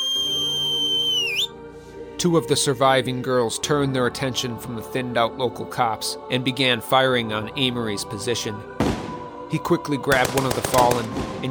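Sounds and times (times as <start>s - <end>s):
sharp loud whistle from a person: 0.0s - 1.6s
speech: 2.2s - 8.8s, 9.5s - 11.4s.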